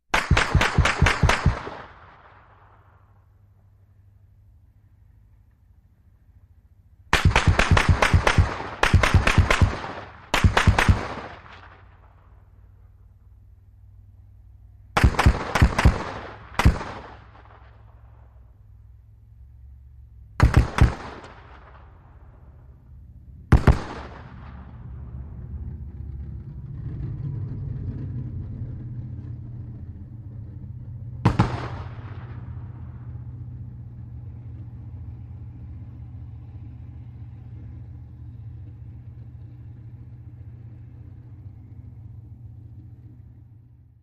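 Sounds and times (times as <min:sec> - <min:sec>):
.50 caliber bullet cracks from distant firing: 0:00.1 - 0:03.2, 0:07.1 - 0:12.4, 0:15.0 - 0:18.3, 0:20.4 - 0:22.4, 0:23.5 - 0:24.7, 0:31.2 - 0:33.0.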